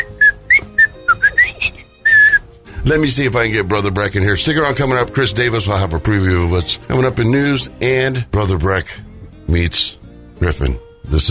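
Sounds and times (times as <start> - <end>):
person whistling short clear chirpy notes: 0.0 - 2.5
speech: 2.9 - 11.2.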